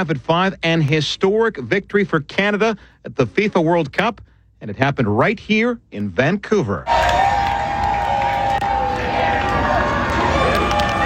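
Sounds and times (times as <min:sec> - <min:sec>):
speech: 0:00.0 - 0:07.0
stadium crowd of thousands cheering a goal: 0:06.9 - 0:11.0.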